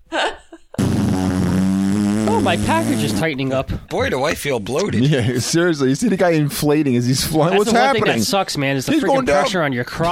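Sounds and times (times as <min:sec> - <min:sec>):
mouth imitating a fart with a buzzy raspberry: 0:00.8 - 0:03.6
speech: 0:02.5 - 0:10.0.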